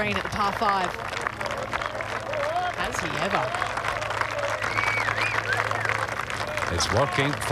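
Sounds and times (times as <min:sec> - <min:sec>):
speech: 0:00.0 - 0:01.2, 0:02.9 - 0:03.8, 0:06.7 - 0:07.4
large outdoor golf crowd cheering and applauding: 0:00.0 - 0:07.4
high whistles: 0:04.7 - 0:05.9.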